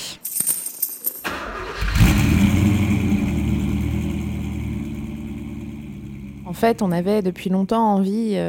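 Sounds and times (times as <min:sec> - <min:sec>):
classic 504 convertible car engine cranking, idling and revving: 0:01.2 - 0:08.0
speech: 0:06.5 - 0:08.4.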